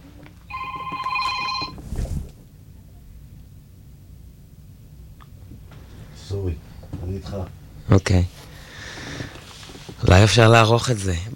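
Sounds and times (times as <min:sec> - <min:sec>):
phone ringing with a steady electronic tone: 0:00.5 - 0:01.8
speech: 0:07.2 - 0:08.4, 0:10.1 - 0:11.3.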